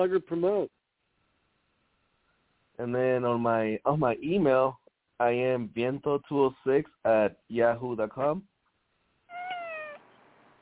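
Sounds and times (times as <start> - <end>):
speech: 0.0 - 0.8, 2.8 - 8.5
cat meowing: 9.3 - 10.0.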